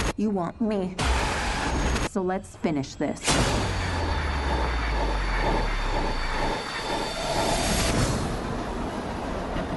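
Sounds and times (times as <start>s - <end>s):
speech: 0.2s - 3.8s
high-pitched rail screech: 3.6s - 8.6s
subway train rumbling with rhythmic clatter: 3.7s - 9.7s.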